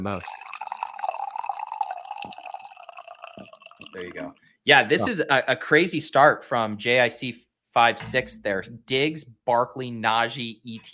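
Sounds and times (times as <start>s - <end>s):
speech: 0.0s - 0.6s, 3.4s - 10.9s
coffee pouring into a cup: 0.0s - 4.2s.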